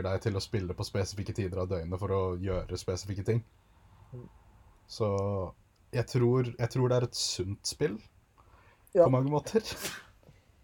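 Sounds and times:
speech: 0.0s - 8.1s, 8.9s - 10.1s
sneeze: 9.7s - 10.2s.

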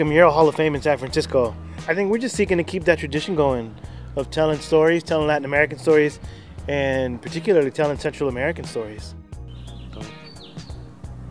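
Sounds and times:
speech: 0.0s - 9.2s
birds chirping and whistling outdoors: 9.4s - 11.2s.

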